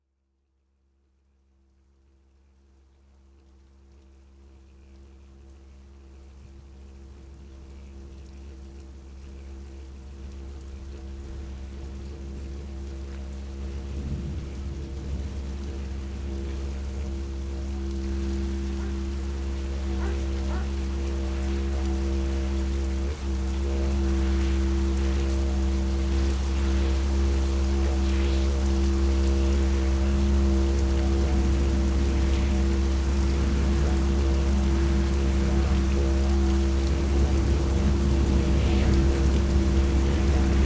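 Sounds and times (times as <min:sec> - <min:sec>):
ambient didgeridoo: 0:04.2 - 0:40.6.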